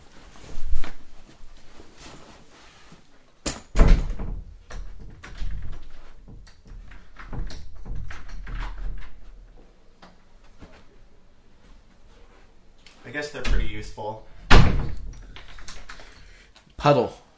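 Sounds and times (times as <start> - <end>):
door opening and closing with solid thunks: 3.4 - 9.6, 14.4 - 16.2
speech: 13.2 - 14.3, 16.8 - 17.2.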